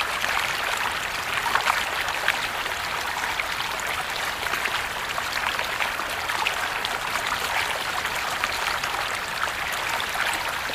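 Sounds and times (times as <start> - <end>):
water running from a bamboo fountain down bamboo stalks: 0.0 - 10.7.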